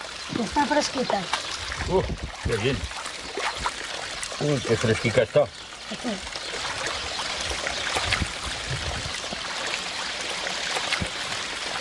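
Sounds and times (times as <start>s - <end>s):
water trickling and rushing: 0.0s - 11.7s
speech: 0.3s - 3.0s, 4.4s - 6.4s.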